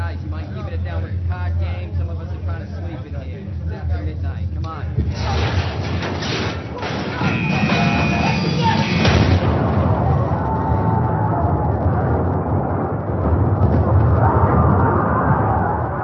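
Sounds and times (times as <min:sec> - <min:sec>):
heavy continuous roar and rumble: 0:00.0 - 0:16.0
torpedo explosion striking a ship: 0:05.1 - 0:16.0
screeching, grinding metal of a ship: 0:05.2 - 0:09.4.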